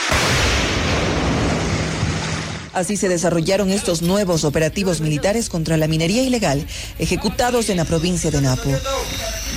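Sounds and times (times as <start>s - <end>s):
explosion during a military operation against illegal mining in the Amazon jungle: 0.0s - 2.8s
speech: 2.8s - 9.4s.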